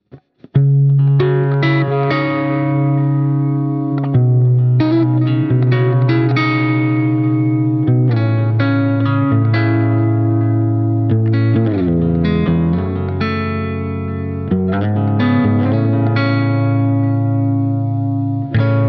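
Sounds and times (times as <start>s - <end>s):
finger-picked electric guitar with edge-of-breakup amp tone and reverb: 0.0s - 18.8s.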